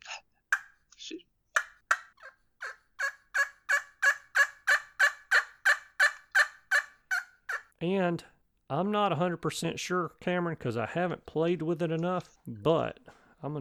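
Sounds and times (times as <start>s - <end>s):
game call imitating a sleepy old turkey hen with raspy yelps: 1.6s - 7.8s
speech: 7.8s - 13.5s.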